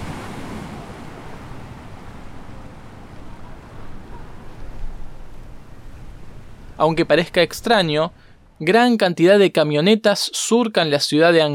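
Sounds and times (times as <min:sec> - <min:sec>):
ocean surf roaring: 0:00.0 - 0:08.4
wind blowing through rustling palm leaves: 0:00.0 - 0:08.6
speech: 0:06.8 - 0:11.5.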